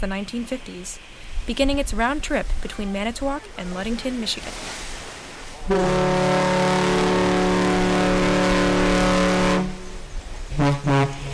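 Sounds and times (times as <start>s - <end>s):
speech: 0.0s - 4.9s, 5.7s - 6.2s
car ferry's deep horn blasting as a salute: 5.7s - 11.3s.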